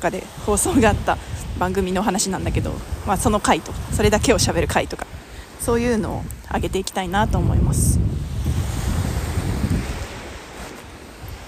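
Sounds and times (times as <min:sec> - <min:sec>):
speech: 0:00.0 - 0:08.6
gusty wind buffeting the microphone: 0:00.0 - 0:11.4
steady roar of ocean surf at the seaside: 0:00.0 - 0:11.4.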